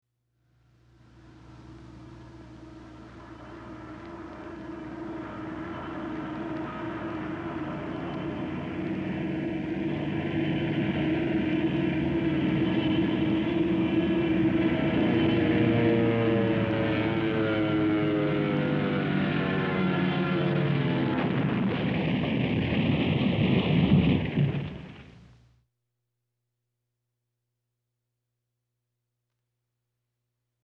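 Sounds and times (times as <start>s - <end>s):
plane crash: 1.1s - 25.3s.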